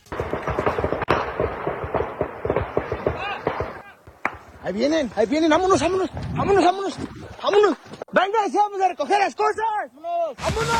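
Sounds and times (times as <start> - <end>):
rapid bursts of long-gun fire in avocado orchards: 0.0 - 5.0
isolated gunshots: 0.0 - 6.1
speech: 4.7 - 10.7.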